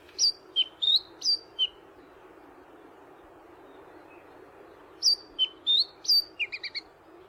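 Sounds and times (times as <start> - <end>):
Chatham Island black robin singing: 0.2 - 1.8, 5.0 - 6.8.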